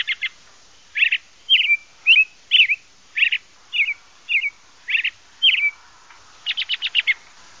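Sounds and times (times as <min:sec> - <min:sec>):
American robin singing its cheer-up cheerio song: 0:00.0 - 0:07.4.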